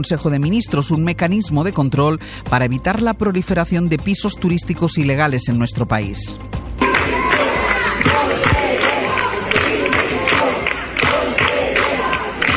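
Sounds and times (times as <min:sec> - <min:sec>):
speech: 0:00.0 - 0:06.6
protesting teachers shouting: 0:06.8 - 0:12.5
teachers chanting in protest in the Valencian regional parliament: 0:06.8 - 0:12.5.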